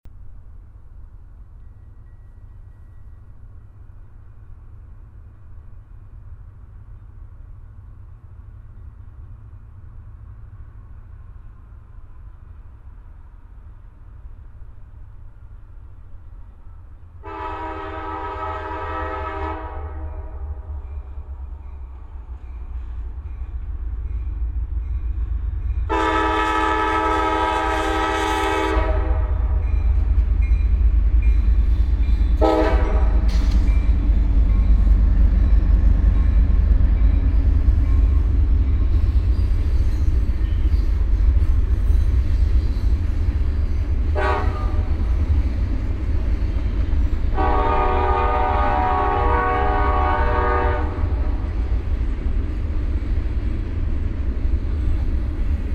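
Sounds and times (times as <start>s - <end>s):
freight train: 0.0s - 55.7s.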